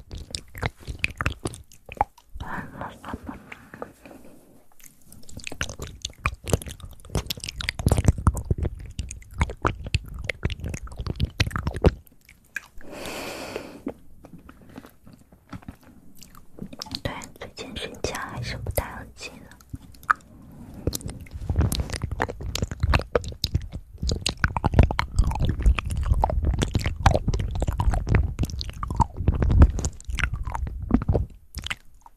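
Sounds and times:
fast wet mouth clicks, smacks and chewing-like crunches: 0:00.0 - 0:02.4, 0:04.7 - 0:12.8, 0:13.8 - 0:20.2, 0:20.8 - 0:32.1
person whispering softly: 0:02.4 - 0:04.5, 0:16.8 - 0:19.7.

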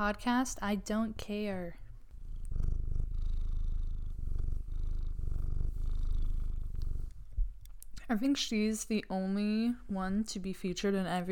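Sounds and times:
speech: 0:00.0 - 0:01.8, 0:08.1 - 0:11.3
cat purring in a person's lap: 0:01.2 - 0:07.6.

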